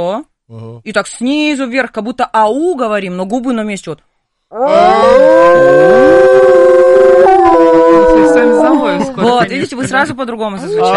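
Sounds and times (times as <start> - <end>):
speech: 0.0 - 6.2, 8.4 - 10.9
person imitating a wolf howl as a voice exercise: 4.5 - 9.2
laughter: 8.0 - 10.9.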